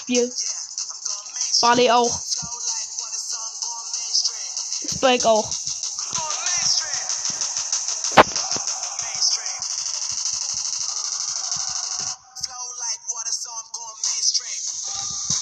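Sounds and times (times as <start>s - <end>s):
bright busy electronic game backdrop: 0.0s - 0.4s, 1.6s - 2.5s, 4.0s - 12.1s
speech: 0.1s - 0.7s, 1.6s - 2.6s, 5.0s - 5.6s.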